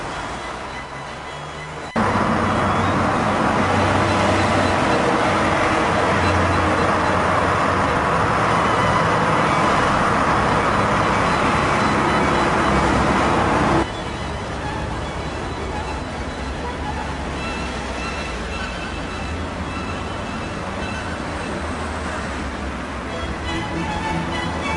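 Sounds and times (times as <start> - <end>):
street traffic roar at a bus stop: 0.0 - 24.7.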